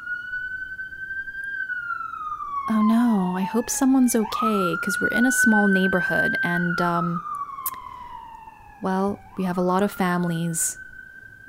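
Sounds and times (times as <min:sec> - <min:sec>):
emergency vehicle siren wailing: 0:00.0 - 0:11.4
speech: 0:02.7 - 0:07.3, 0:08.8 - 0:10.8.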